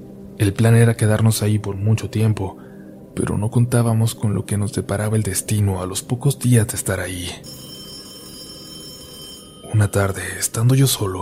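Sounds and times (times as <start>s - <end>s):
speech: 0.0s - 7.6s, 9.8s - 11.2s
telephone ringing with high-pitched trill: 7.4s - 11.0s.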